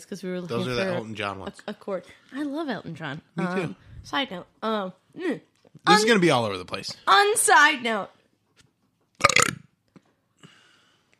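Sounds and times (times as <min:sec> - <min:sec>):
speech: 0:00.0 - 0:08.2
loud rumbling burp: 0:09.2 - 0:09.7.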